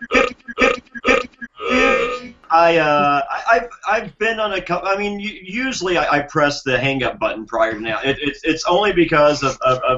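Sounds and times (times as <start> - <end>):
man belching loudly: 0.1 - 2.4
speech: 2.6 - 9.9
laughter: 6.9 - 9.9.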